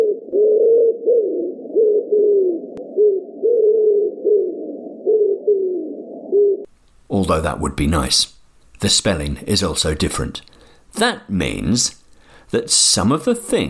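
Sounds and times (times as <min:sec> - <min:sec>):
pigeons cooing: 0:00.0 - 0:06.7
speech: 0:07.2 - 0:13.6.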